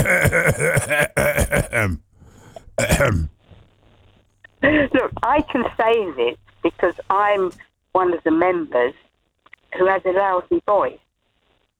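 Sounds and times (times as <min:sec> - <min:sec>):
speech: 0:00.0 - 0:02.1, 0:02.9 - 0:03.3, 0:04.6 - 0:09.0, 0:09.7 - 0:11.0
man clearing his throat: 0:00.0 - 0:03.4.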